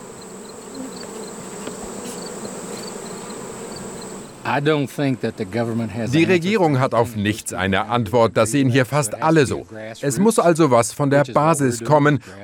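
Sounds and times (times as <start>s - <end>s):
many bees buzzing at beehives being checked for mites: 0.0s - 6.5s
speech: 4.4s - 12.4s.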